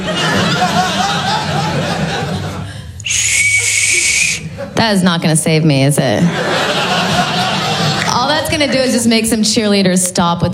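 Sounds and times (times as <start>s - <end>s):
audience laughter: 0.0s - 5.2s, 6.0s - 9.1s
personal safety rape whistle with a tassel blown: 3.0s - 4.5s
speech: 4.8s - 6.7s, 8.6s - 10.5s.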